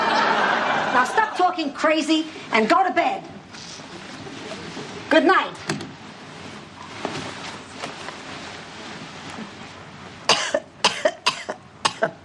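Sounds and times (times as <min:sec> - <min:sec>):
laughter: 0:00.0 - 0:01.5
speech: 0:01.0 - 0:03.4, 0:05.1 - 0:05.8
person coughing sharply: 0:10.3 - 0:12.2.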